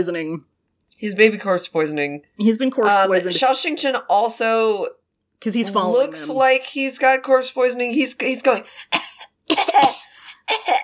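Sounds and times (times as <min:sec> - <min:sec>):
speech: 0:00.0 - 0:10.8
man imitating a small feeble cough: 0:09.0 - 0:10.8.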